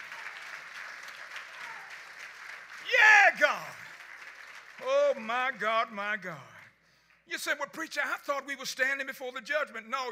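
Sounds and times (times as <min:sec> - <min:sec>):
church congregation clapping during a praise break: 0:00.0 - 0:08.0
speech: 0:04.8 - 0:06.5, 0:07.3 - 0:10.1.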